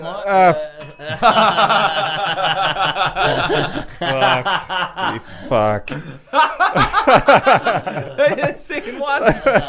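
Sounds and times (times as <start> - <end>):
people chuckling and laughing: 0.0 - 9.6
speech: 0.0 - 9.6
bell being hit once: 0.8 - 1.8.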